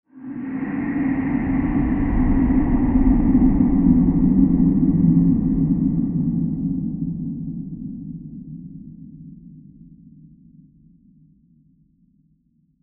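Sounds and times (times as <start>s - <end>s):
diffuse breathy horror transition: 0.2s - 6.2s.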